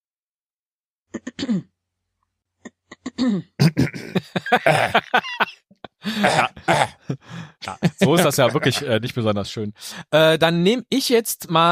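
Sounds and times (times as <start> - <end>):
speech: 1.2 - 1.7, 3.2 - 11.6
throat clearing sound effect: 1.2 - 1.7, 2.7 - 5.0, 6.1 - 7.1
laughter: 4.0 - 9.1.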